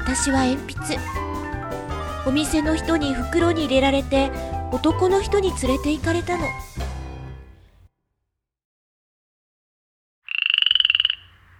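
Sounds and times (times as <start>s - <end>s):
speech: 0.1s - 1.3s, 2.2s - 6.8s
frog croaking: 10.3s - 11.5s.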